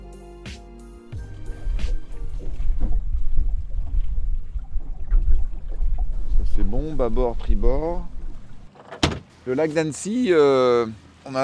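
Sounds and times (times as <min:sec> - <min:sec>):
steady low rumble: 0:01.2 - 0:08.7
water sloshing on Lake Annecy: 0:01.5 - 0:08.7
small fisherman's boat rocking and knocking on the water of Lake Annecy: 0:02.0 - 0:09.2
speech: 0:07.0 - 0:08.1, 0:09.5 - 0:11.4.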